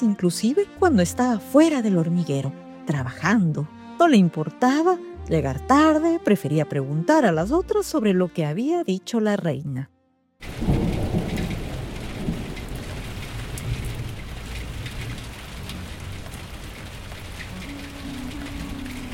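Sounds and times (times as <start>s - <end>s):
speech: 0.0s - 10.7s
deep rolling thunder: 10.4s - 19.1s
heavy rain: 10.4s - 19.1s.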